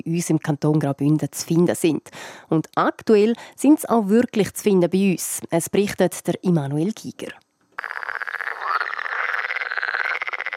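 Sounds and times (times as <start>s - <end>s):
speech: 0.1s - 8.3s
water frog mating call rattling croak: 7.8s - 10.5s.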